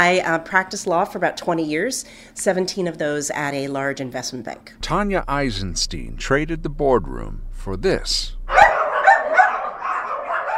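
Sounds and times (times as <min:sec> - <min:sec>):
speech: 0:00.0 - 0:08.4
dogs barking and yipping at a doggy daycare and boarding facility: 0:08.5 - 0:10.5.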